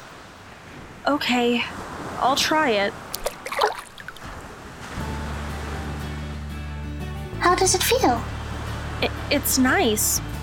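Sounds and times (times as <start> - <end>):
wash of moving ocean water: 0.0 - 6.6
speech: 1.0 - 3.0, 7.4 - 8.4, 9.0 - 10.3
feet splashing in ocean water: 3.1 - 4.4.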